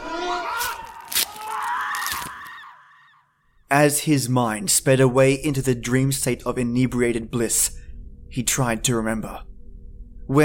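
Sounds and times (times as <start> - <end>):
shrill wavering screams: 0.0 - 3.4
speech: 3.7 - 9.5.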